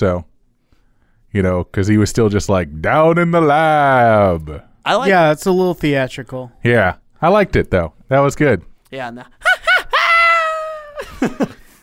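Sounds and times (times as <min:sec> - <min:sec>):
speech: 0:00.0 - 0:00.3, 0:01.3 - 0:09.4, 0:11.2 - 0:11.6
person screaming at the end of a song: 0:09.4 - 0:11.1
laughter: 0:09.4 - 0:11.8.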